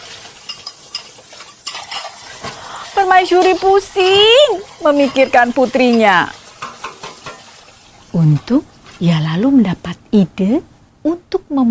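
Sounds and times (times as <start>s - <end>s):
plates and utensils clinking and clattering: 0.0s - 9.0s
watery hiss of dishes being washed in a kitchen: 0.0s - 9.1s
speech: 3.0s - 6.4s, 8.1s - 11.6s.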